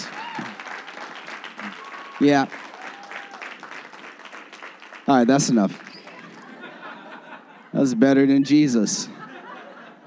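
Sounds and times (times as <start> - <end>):
audience clapping: 0.0 - 6.7
speech: 2.2 - 2.6, 5.1 - 5.9, 7.8 - 9.2
laughter: 5.9 - 10.0.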